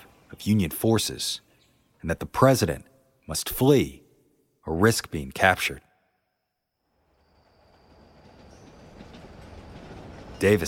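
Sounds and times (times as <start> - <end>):
speech: 0.4 - 4.0, 4.7 - 5.9, 10.4 - 10.6
steam train rumbling along the rails: 6.9 - 10.6.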